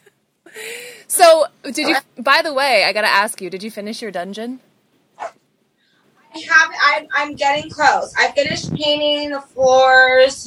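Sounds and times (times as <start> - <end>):
speech: 1.2 - 4.7, 6.4 - 10.4
dog barking: 5.2 - 5.4.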